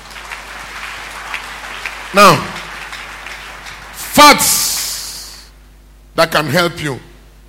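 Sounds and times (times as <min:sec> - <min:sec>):
audience clapping: 0:00.0 - 0:05.5
speech: 0:02.1 - 0:02.5, 0:04.2 - 0:04.7, 0:06.2 - 0:07.1.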